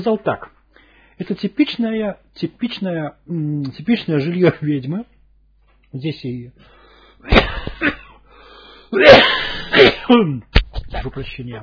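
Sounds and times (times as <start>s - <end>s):
speech: 0.0s - 0.5s, 1.2s - 5.1s, 5.9s - 8.0s, 8.9s - 11.6s
person coughing: 7.3s - 8.2s, 9.0s - 10.3s.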